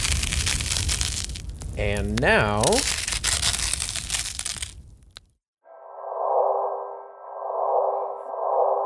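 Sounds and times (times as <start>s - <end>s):
crunching crackling noise: 0.0s - 8.8s
speech: 1.8s - 3.0s
gravitational-wave signal from two black holes rendered as a hollow drone: 5.7s - 8.8s.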